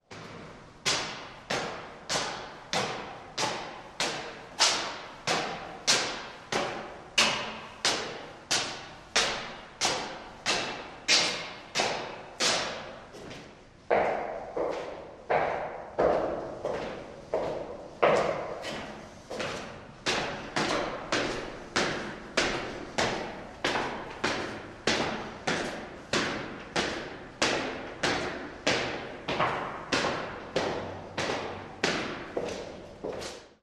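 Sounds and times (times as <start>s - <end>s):
man's footsteps going up and down cement stairs: 0.1s - 33.6s.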